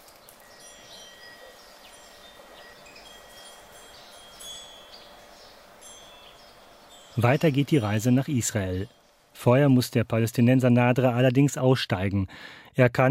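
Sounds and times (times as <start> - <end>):
many birds chirping and trilling in a courtyard: 0.0 - 9.9
speech: 7.2 - 13.0.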